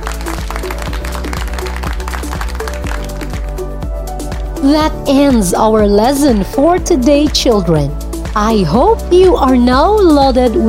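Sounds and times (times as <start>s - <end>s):
crowd applauding: 0.0s - 3.7s
speech: 4.6s - 10.6s.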